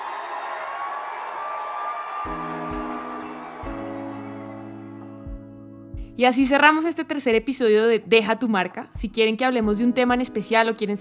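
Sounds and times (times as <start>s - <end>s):
crowd applauding: 0.0s - 5.4s
speech: 2.2s - 2.6s, 6.2s - 11.0s.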